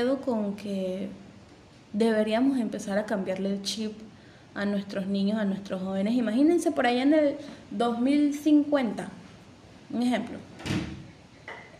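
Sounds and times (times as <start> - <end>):
speech: 0.0 - 1.3, 1.9 - 9.2, 9.9 - 10.8
door banging shut from the wind: 10.6 - 11.1.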